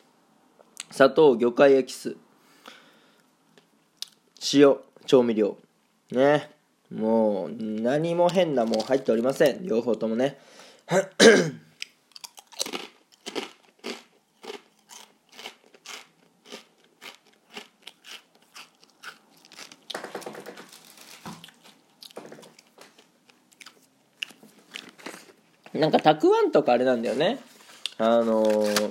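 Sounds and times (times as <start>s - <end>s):
speech: 1.0s - 2.2s, 4.5s - 11.6s, 25.8s - 28.8s
crunchy chewing of a crispy shrimp cracker: 11.8s - 20.0s, 20.7s - 25.4s.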